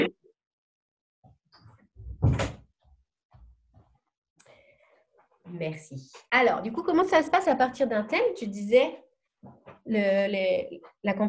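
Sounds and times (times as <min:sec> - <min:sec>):
door swinging shut with a solid thump: 0:02.0 - 0:02.6
speech: 0:05.5 - 0:11.2.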